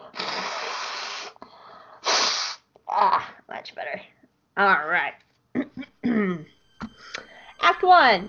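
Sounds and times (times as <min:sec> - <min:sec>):
person blowing their nose: 0:00.0 - 0:01.4, 0:02.0 - 0:02.7
speech: 0:03.0 - 0:05.2, 0:07.8 - 0:08.2.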